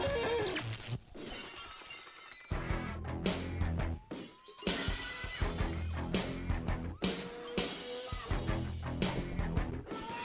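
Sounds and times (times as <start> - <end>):
glass shattering: 1.1 - 3.0, 4.0 - 8.4
professional wrestling entrance theme song: 2.9 - 9.9.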